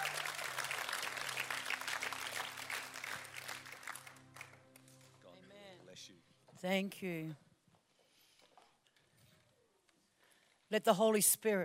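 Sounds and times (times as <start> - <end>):
crowd applauding to welcome a speaker: 0.0 - 5.2
speech: 6.6 - 7.4, 10.7 - 11.6.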